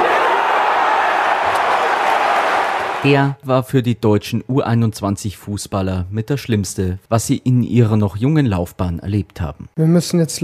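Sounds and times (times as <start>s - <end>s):
large Spanish crowd cheering at a U21 football match against Germany: 0.0s - 3.2s
speech: 3.0s - 10.4s.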